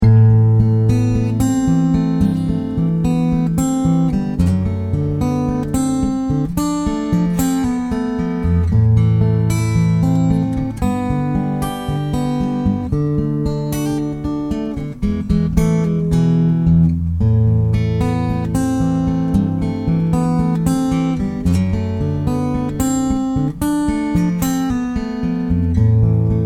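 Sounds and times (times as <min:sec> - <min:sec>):
weeping guitar: 0:00.0 - 0:26.4.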